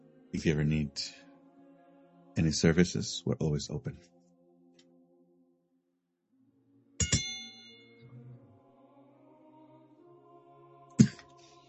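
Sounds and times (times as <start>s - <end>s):
speech: 0.3s - 1.2s, 2.4s - 4.1s
bell struck to end a round: 7.0s - 8.0s.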